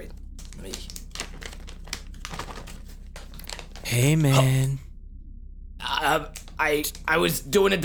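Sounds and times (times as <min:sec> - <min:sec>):
small paper receipt being crumpled: 0:00.4 - 0:03.9
speech: 0:00.6 - 0:01.0, 0:03.9 - 0:04.8, 0:06.1 - 0:07.8.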